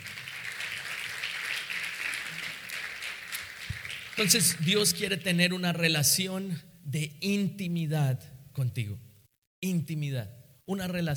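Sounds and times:
crowd applauding at a Christian sermon: 0.0s - 5.0s
speech: 4.2s - 11.1s.

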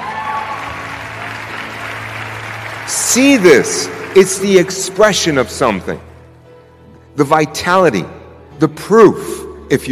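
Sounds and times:
crowd applauding: 0.0s - 5.7s
speech: 2.9s - 6.1s, 7.2s - 9.9s.

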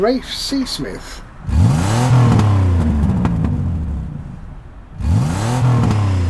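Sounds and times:
speech: 0.0s - 1.6s
car engine being tested and revved: 0.0s - 6.2s.

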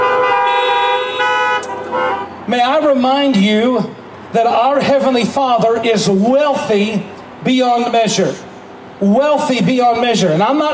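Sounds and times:
car horn honking: 0.0s - 2.4s
speech: 2.5s - 10.7s.

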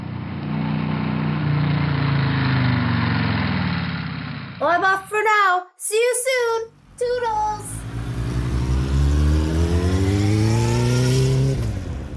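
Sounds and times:
motorbike engine revving and pulling away: 0.0s - 4.6s, 7.6s - 12.1s
speech: 4.6s - 7.8s.

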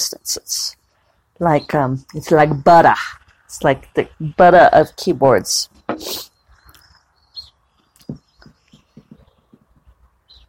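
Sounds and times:
speech: 0.0s - 0.8s, 1.4s - 6.3s
bird chicks chirping in a nest box under a portal: 0.4s - 3.5s, 5.3s - 10.4s
soft irregular low knocks and thumps: 8.1s - 10.1s.

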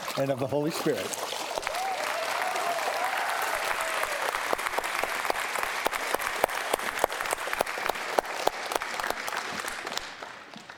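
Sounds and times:
speech: 0.2s - 1.4s
congregation applauding after a baptism: 1.3s - 10.7s
person cheering: 1.6s - 4.3s.

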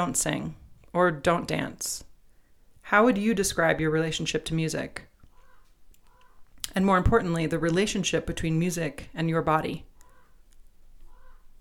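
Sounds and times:
speech: 0.0s - 2.1s, 2.9s - 5.1s, 6.7s - 9.9s
raven cawing: 5.3s - 6.5s, 10.0s - 10.4s, 11.1s - 11.5s.

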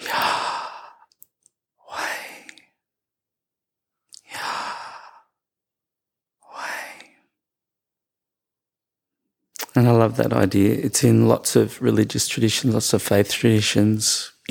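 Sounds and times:
breathing: 0.0s - 1.1s, 1.9s - 2.8s, 4.2s - 5.4s, 6.4s - 7.4s
speech: 9.8s - 14.4s.

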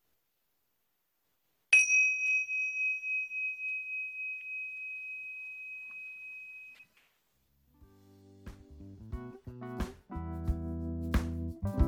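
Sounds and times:
meditation bell struck and ringing: 1.8s - 6.8s
music: 7.8s - 11.8s.

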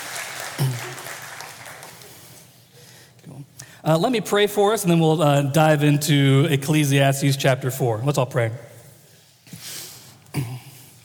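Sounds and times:
crowd applauding: 0.0s - 2.5s
speech: 3.4s - 8.7s.

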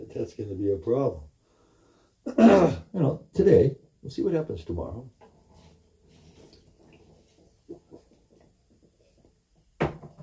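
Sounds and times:
speech: 0.1s - 1.3s, 2.2s - 5.2s
water sloshing from a harmonica being dipped in water: 5.1s - 9.4s.

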